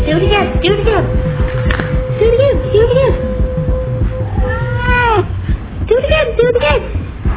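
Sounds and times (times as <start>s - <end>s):
voices: 0.0s - 7.0s
steady hum: 0.0s - 7.3s
cat meowing: 4.2s - 5.3s.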